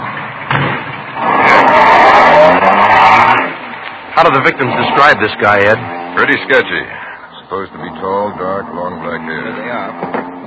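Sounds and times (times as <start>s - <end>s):
car engine revving as vehicle pulls away and accelerates: 0.0s - 10.4s
speech: 4.2s - 10.2s.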